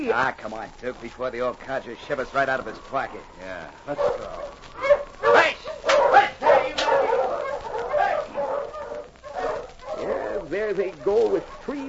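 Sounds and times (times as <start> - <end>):
speech: 0.0 - 4.9, 10.5 - 11.8
dog barking and yipping excitedly: 3.9 - 11.8.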